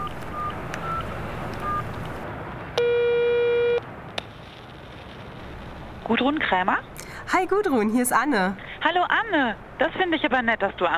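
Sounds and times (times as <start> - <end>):
windy outdoor noise: 0.0 - 10.9
buzzy telephone ringback tone while a call connects: 2.8 - 3.8
faint short beeps: 2.8 - 3.8
speech: 6.1 - 10.9.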